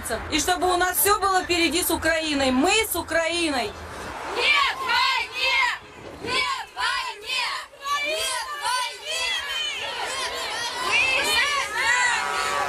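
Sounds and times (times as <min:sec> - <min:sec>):
speech: 0:00.1 - 0:03.8, 0:04.4 - 0:04.6
dense crowd at a protest rally shouting and calling out: 0:04.2 - 0:12.6.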